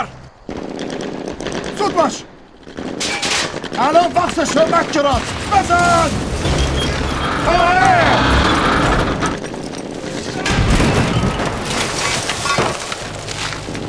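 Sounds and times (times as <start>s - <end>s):
battlefield gunfire: 0.5s - 12.7s
speech: 2.0s - 2.3s, 3.8s - 6.6s, 7.4s - 8.2s
rumbling explosive blasts in battle: 3.6s - 9.5s, 10.3s - 12.0s
crashing debris in battle: 4.2s - 13.8s
people shouting in battle: 7.1s - 9.2s.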